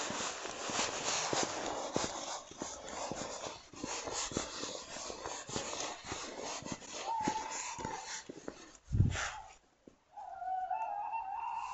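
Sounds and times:
steady rustling crackly background: 0:00.0 - 0:10.1
tawny owls calling back and forth outdoors: 0:10.2 - 0:11.7.

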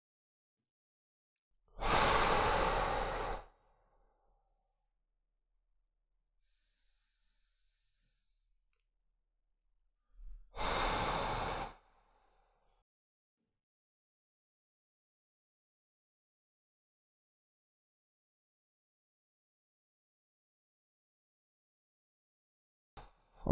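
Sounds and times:
long deep breaths close to the microphone: 0:01.8 - 0:03.5, 0:06.4 - 0:08.5, 0:10.6 - 0:12.5.

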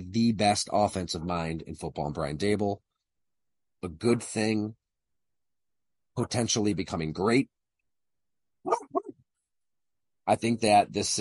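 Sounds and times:
speech: 0:00.1 - 0:02.9, 0:03.8 - 0:04.8, 0:06.2 - 0:07.6, 0:10.3 - 0:11.1
dog barking outdoors: 0:08.7 - 0:09.1.

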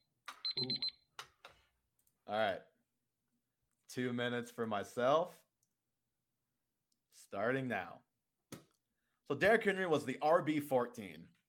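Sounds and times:
loud timer buzzer electronic beeps: 0:00.0 - 0:01.0
speech: 0:00.6 - 0:00.9, 0:02.3 - 0:02.7, 0:03.9 - 0:05.4, 0:07.3 - 0:08.1, 0:09.3 - 0:11.4.

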